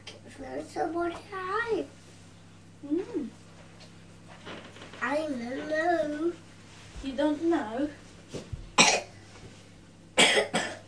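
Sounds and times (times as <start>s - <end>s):
speech: 0.4s - 2.0s, 2.8s - 3.4s, 4.4s - 6.4s, 7.0s - 8.4s
sharp coughs: 8.8s - 9.1s, 10.2s - 10.8s.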